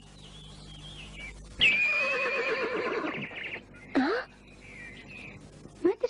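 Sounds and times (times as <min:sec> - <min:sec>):
horse neighing: 0:01.6 - 0:03.6.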